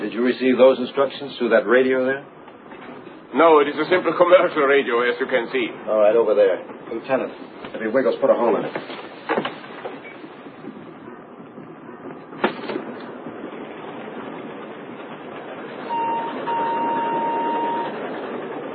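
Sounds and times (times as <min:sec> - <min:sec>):
train rolling along rails: 0:00.0 - 0:18.7
speech: 0:00.1 - 0:02.4, 0:03.3 - 0:09.0
thin sustained squeal: 0:15.9 - 0:18.0.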